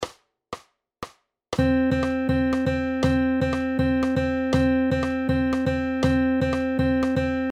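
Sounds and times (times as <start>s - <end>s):
four over three polyrhythm notes in 3/4 time: 1.6s - 7.5s.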